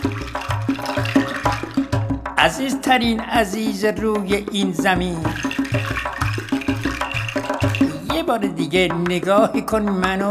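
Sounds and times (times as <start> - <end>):
water running from a tap in a gurgling stream: 0.0 - 2.2, 4.9 - 8.2
speech: 2.4 - 5.9, 8.2 - 10.3.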